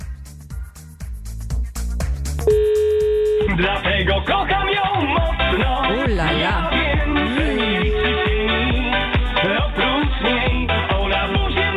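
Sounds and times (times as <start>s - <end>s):
driving beat-heavy music bed: 0.0s - 11.7s
telephone dialing tones: 2.5s - 3.5s
speech: 3.6s - 7.4s.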